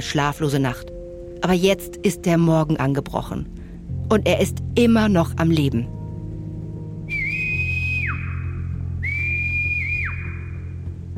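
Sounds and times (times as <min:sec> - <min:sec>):
speech: 0:00.0 - 0:06.0
constant low rumbling background: 0:00.0 - 0:11.1
faint sustained whistle from above: 0:07.1 - 0:10.7.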